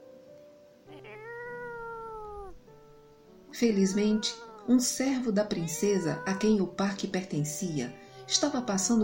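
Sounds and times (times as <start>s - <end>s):
cat yowling loudly: 0.9s - 2.8s, 3.6s - 9.0s
speech: 3.6s - 9.0s.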